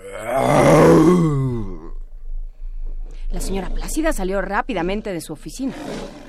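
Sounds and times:
person's voice imitating a lion's roar: 0:00.0 - 0:02.0
speech: 0:03.5 - 0:06.2.

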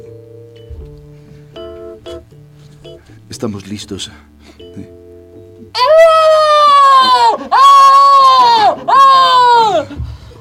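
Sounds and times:
speech: 0:03.3 - 0:05.0
loud piercing human scream: 0:05.8 - 0:10.0.

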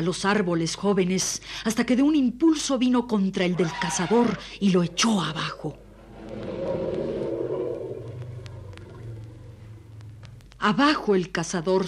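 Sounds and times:
speech: 0:00.0 - 0:05.8, 0:10.6 - 0:11.8
deep drawn-out elephant bellow: 0:03.6 - 0:10.4
faint crackles: 0:03.9 - 0:11.8.

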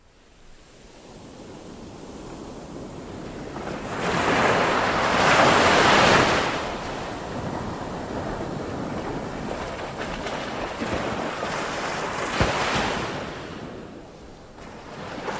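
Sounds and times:
wind: 0:00.0 - 0:15.3
ocean waves breaking against the shore: 0:00.2 - 0:15.3.

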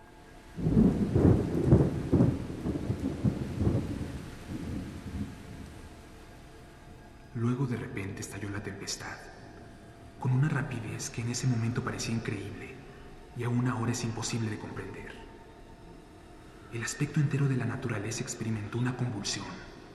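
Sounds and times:
steady rain-like hiss: 0:00.0 - 0:19.9
distant rumbling thunder: 0:00.6 - 0:06.1
speech: 0:08.6 - 0:09.3, 0:10.2 - 0:12.7, 0:13.4 - 0:15.2, 0:16.7 - 0:19.7.

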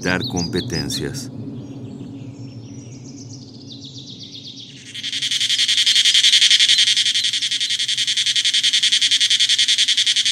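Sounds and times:
speech: 0:00.0 - 0:01.4
cicada singing high in a tree to attract a mate: 0:04.7 - 0:10.2.

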